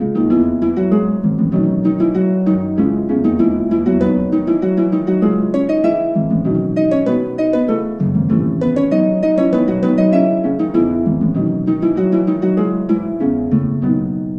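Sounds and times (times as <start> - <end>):
harp ballad: 0.0 - 14.3.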